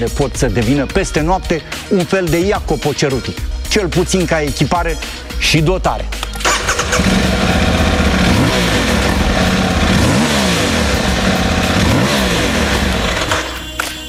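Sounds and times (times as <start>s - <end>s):
speech: 0.0s - 6.3s
motorcycle engine revving: 6.4s - 13.7s.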